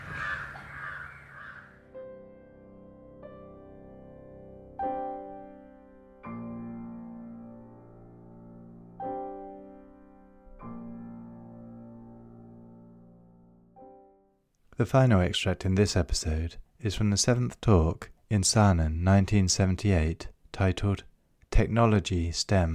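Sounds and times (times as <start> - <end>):
crow cawing harshly: 0.0 - 1.9
speech: 14.8 - 22.7.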